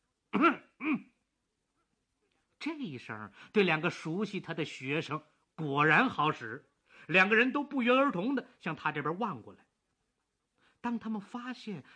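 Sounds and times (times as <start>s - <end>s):
man coughing forcefully and deliberately: 0.4s - 1.1s
speech: 0.4s - 1.1s, 2.7s - 9.6s, 10.8s - 11.9s.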